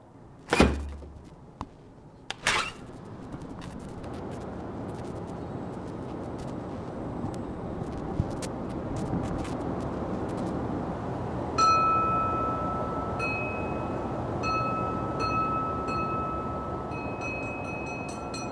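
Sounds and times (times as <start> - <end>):
outdoor city noise: 0.0 - 18.5
door clunking open with a heavy thump: 0.5 - 1.3.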